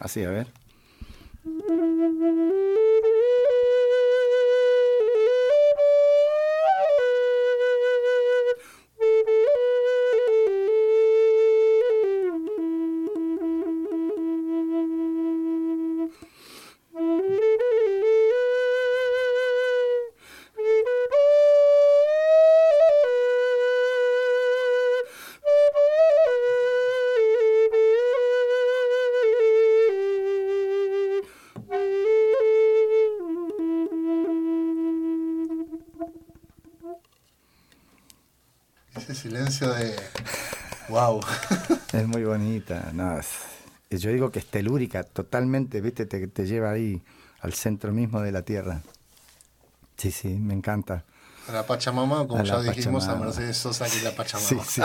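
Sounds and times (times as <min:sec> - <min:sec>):
speech: 0:00.0 - 0:00.6, 0:01.7 - 0:02.8, 0:39.6 - 0:40.1, 0:41.2 - 0:48.9, 0:50.0 - 0:54.8
breathy Native American flute playing a slow melody: 0:01.4 - 0:16.3, 0:16.9 - 0:37.2
laughter: 0:39.1 - 0:42.2, 0:52.5 - 0:54.8.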